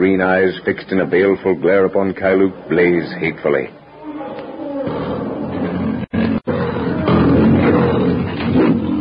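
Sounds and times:
speech: 0.0 - 3.8
huge lion growling: 4.0 - 8.9.

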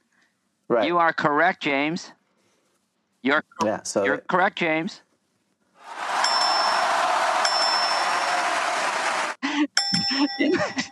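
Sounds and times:
speech: 0.7 - 2.2, 3.2 - 5.1, 9.6 - 10.9
burst of voices reacting: 5.8 - 9.4
bell ringing: 6.1 - 8.7, 9.8 - 10.9.

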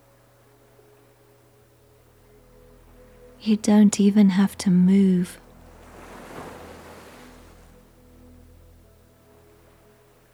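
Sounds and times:
faint breeze: 0.0 - 10.3
low hum: 0.6 - 10.3
gentle waves washing onto a shore: 2.8 - 10.2
speech: 3.4 - 5.4.

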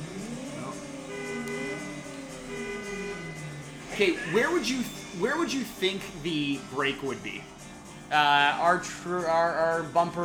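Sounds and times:
video game car horn honking: 0.9 - 4.6
speech: 4.0 - 10.2.

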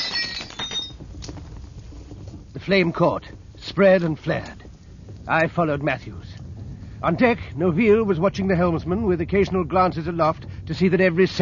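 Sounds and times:
glass lamp smashed onto torn paper and scattered straw: 0.0 - 1.0
tinkling glass shards: 0.0 - 1.0
rough scattering rustle of debris settling: 0.0 - 11.4
speech: 2.6 - 4.6, 5.3 - 6.3, 7.0 - 11.4.

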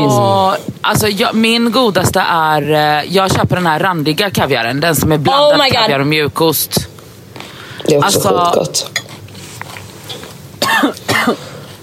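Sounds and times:
speech: 0.0 - 6.9, 7.8 - 9.0, 10.8 - 11.5
harsh throaty coughs: 10.6 - 11.6.

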